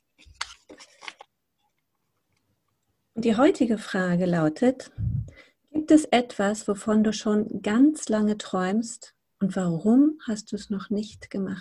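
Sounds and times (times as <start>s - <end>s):
folded paper question slip crackling and rustling as it is unfolded: 0.0s - 1.3s
speech: 3.2s - 5.0s, 5.8s - 11.5s.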